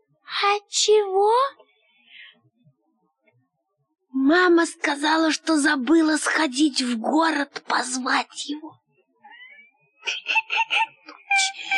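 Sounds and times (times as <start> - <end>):
speech: 0.4 - 1.6, 4.2 - 8.8, 10.0 - 11.7
child crying in rhythmic sobbing wails: 10.1 - 11.7.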